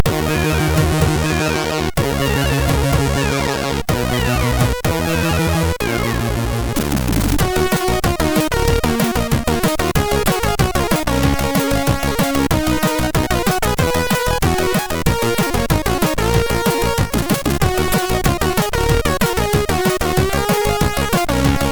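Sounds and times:
chiptune groove on a MOS6581R3 SID chip: 0.0s - 21.7s.

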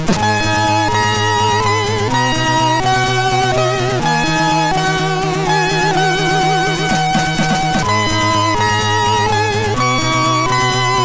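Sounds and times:
alien sound from a MOS6581R2 chip: 0.2s - 11.0s.

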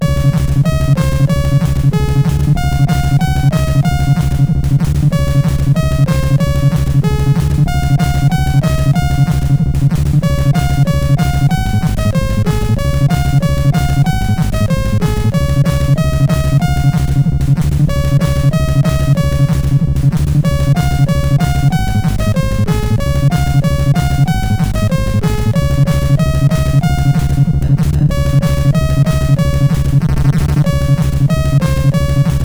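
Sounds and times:
techno music on CSG8580R5: 0.0s - 32.4s.

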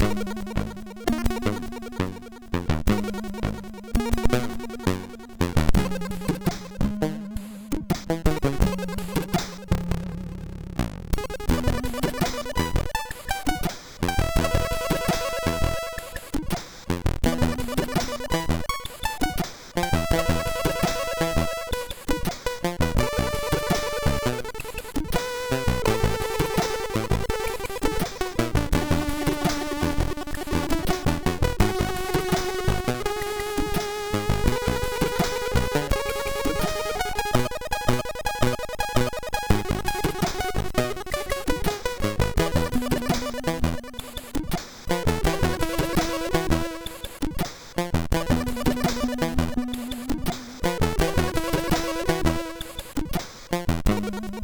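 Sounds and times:
acid synth line on a MOS6581R3 sound chip: 0.0s - 54.4s.

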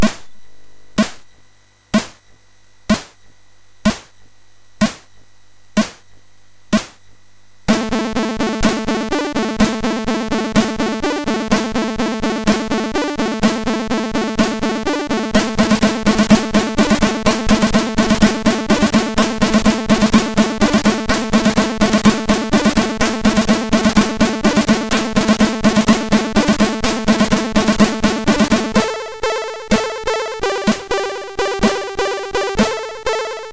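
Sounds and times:
MOS6581R3 chip percussion: 0.0s - 0.3s, 1.0s - 1.2s, 2.0s - 2.2s, 2.9s - 3.2s, 3.8s - 4.1s, 4.8s - 5.1s, 5.8s - 6.0s, 6.7s - 7.0s, 7.7s - 33.5s.

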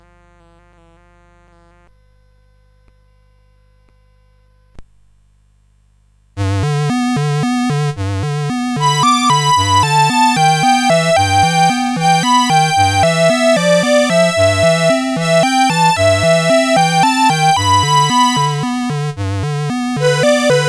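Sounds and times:
melody played on a CSG8580 sound chip: 6.5s - 20.6s.

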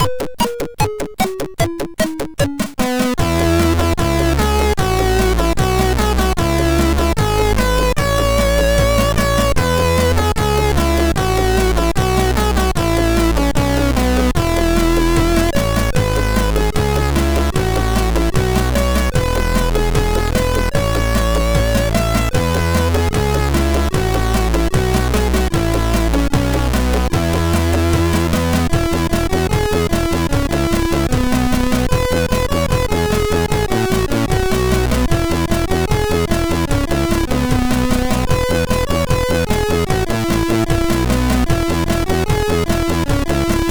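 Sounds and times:
tune on a MOS6581R3 SID chip: 0.0s - 43.6s.

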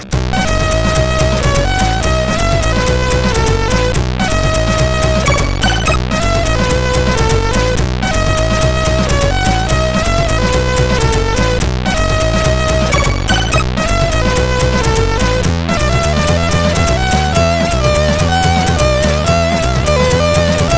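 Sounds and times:
tune on CSG8580R5: 0.1s - 20.7s.

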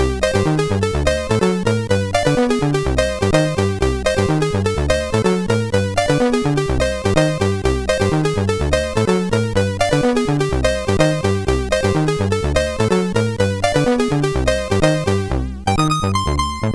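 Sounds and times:
synthesized piano sound from MOS6581R4 chip: 0.0s - 16.6s.

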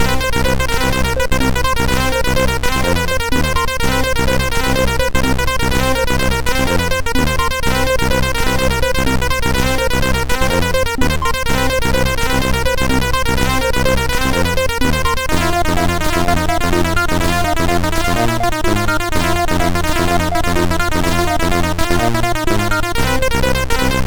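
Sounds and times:
blues music on a MOS6581R2 sound chip: 0.0s - 24.0s.

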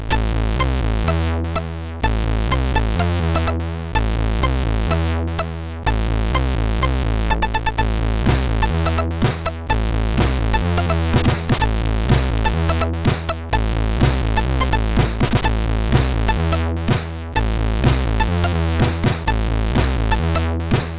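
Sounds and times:
action drums on MOS6581 SID chip: 0.1s - 20.9s.

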